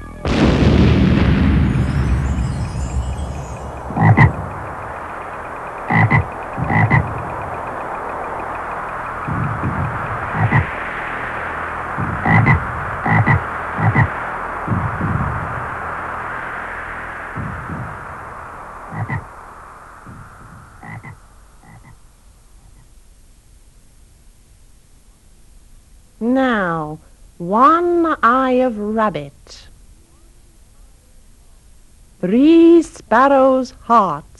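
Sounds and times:
steady hissing wash: 0.0 - 34.3
frog croaking: 3.5 - 16.2, 17.3 - 22.9
speech: 28.5 - 29.6, 32.2 - 34.3.

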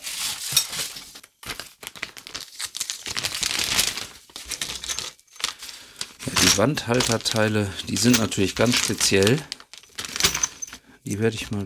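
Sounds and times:
plastic bag crinkling: 1.5 - 10.8
speech: 6.4 - 9.6, 11.1 - 11.6.

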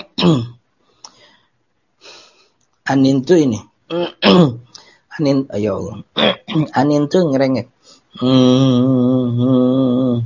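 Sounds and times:
male teacher clearing throat: 0.0 - 0.6, 3.9 - 4.7, 6.1 - 6.8
speech: 0.2 - 0.5, 2.9 - 4.6, 5.2 - 10.2.

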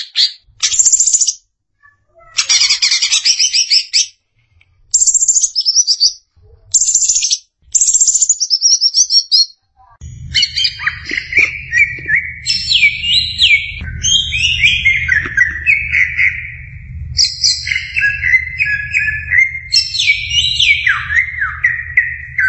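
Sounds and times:
Greater green leafbird song of sharp chirps and whistles: 0.0 - 1.4, 2.4 - 4.2, 4.9 - 6.2, 6.8 - 9.6, 10.3 - 22.4
low background rumble: 10.0 - 22.4.

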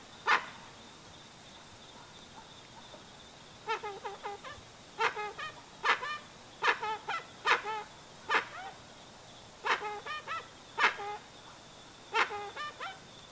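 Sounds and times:
steady high-pitched insect-like hum: 0.0 - 13.3
dusky-legged guan calling with nasal harmonic honks: 0.2 - 0.6, 3.6 - 8.8, 9.6 - 11.3, 12.1 - 13.0.

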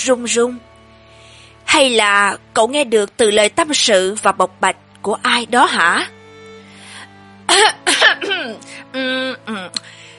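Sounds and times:
speech: 0.0 - 0.7, 1.8 - 6.2, 7.5 - 10.0
person clearing throat: 7.5 - 8.6.

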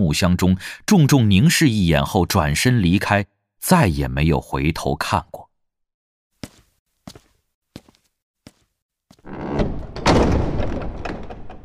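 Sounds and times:
speech: 0.0 - 5.4
heavy palace hall door being opened: 9.2 - 11.6.

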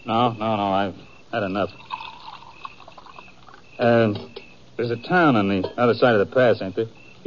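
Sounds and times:
speech: 0.0 - 2.0, 3.8 - 7.2
coffee pouring into a cup: 1.7 - 3.6.

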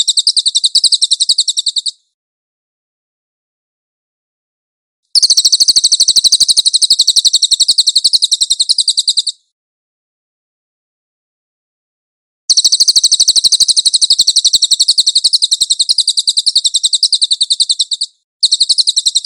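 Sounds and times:
Cililin song used as a master for training songbirds: 0.0 - 2.0, 5.2 - 9.4, 12.5 - 19.2.

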